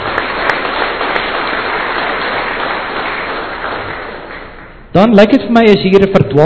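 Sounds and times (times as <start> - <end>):
audience applauding with many hands clapping: 0.0 - 4.8
speech: 5.0 - 6.4.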